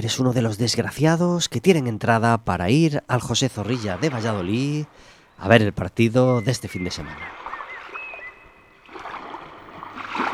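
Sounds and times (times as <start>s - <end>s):
speech: 0.0s - 7.4s
sea waves washing and churning: 3.1s - 5.6s, 6.4s - 10.3s
thin high whistling tone: 6.2s - 8.8s.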